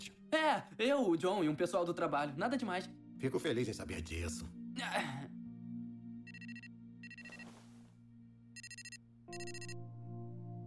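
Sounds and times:
speech: 0.3s - 5.1s
phone ringtone chirping in high-pitched electronic bursts: 6.3s - 7.6s, 8.6s - 9.8s.

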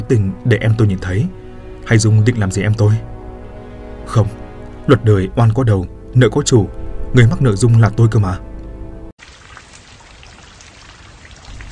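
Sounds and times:
speech: 0.1s - 3.1s, 4.1s - 8.5s
heavy rain pouring down in a sudden downpour: 9.2s - 11.7s.

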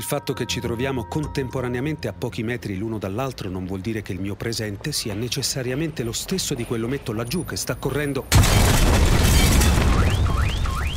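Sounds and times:
speech: 0.0s - 10.2s
heavy bomb-like explosions rumbling: 8.3s - 10.9s.

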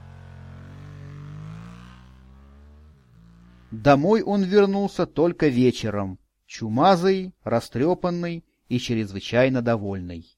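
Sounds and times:
scooter engine droning as it drives off: 0.0s - 4.2s
speech: 3.7s - 10.3s.

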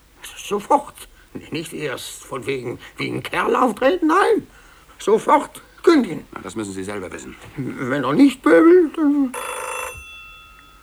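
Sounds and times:
speech: 0.5s - 9.6s
telephone ringing: 7.1s - 10.8s.

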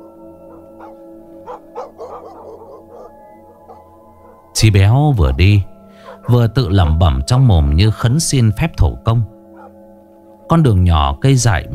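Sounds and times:
dog barking in a distant village at night: 0.5s - 4.4s, 6.0s - 6.5s, 9.6s - 9.8s
speech: 0.9s - 1.8s, 4.6s - 5.7s, 6.3s - 9.3s, 10.5s - 11.7s.

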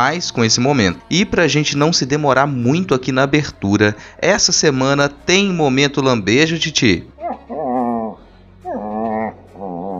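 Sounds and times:
speech: 0.0s - 7.4s
dog whimpering: 7.2s - 9.9s.

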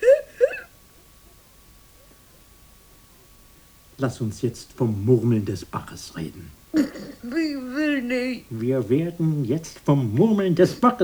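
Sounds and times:
woman whimpering sob: 0.0s - 0.8s, 6.7s - 8.5s
speech: 4.0s - 11.0s
laughter: 6.7s - 11.0s.

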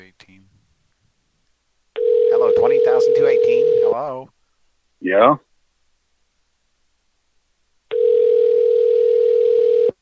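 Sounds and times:
telephone dial tone: 2.0s - 3.9s, 7.9s - 10.0s
speech: 4.0s - 4.4s, 5.0s - 5.4s.

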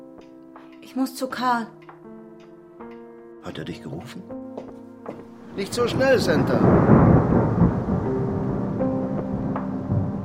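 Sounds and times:
speech: 0.9s - 1.8s, 3.4s - 4.5s, 5.1s - 7.2s
hiss like steady rain: 5.2s - 10.2s
thunder from a storm gathering over a valley: 5.4s - 10.2s.

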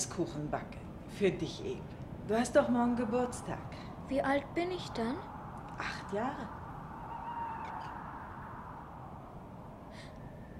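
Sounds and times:
speech: 0.0s - 6.6s
owl hooting: 3.4s - 10.5s.

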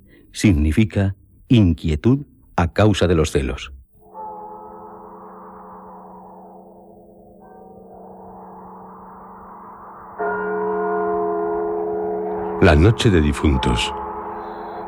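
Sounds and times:
speech: 0.3s - 3.8s, 12.7s - 14.0s
church bells tolling for the dead on All Souls' night: 4.0s - 14.8s.

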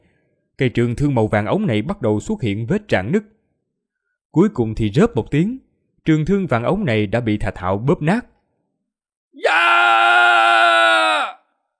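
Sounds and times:
speech: 0.6s - 3.4s, 4.3s - 8.3s
man shouting loudly in pain: 9.4s - 11.5s.

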